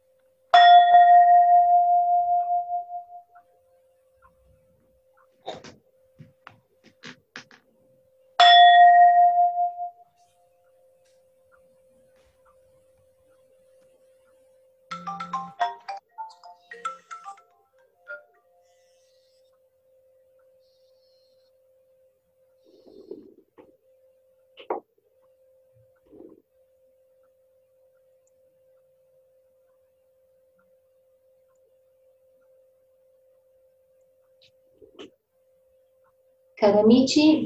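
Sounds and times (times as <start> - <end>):
clear resonant bell strikes: 0.6 - 3.2, 8.4 - 10.1
short cluster of scattered tones: 9.7 - 36.3
speech: 36.6 - 37.4.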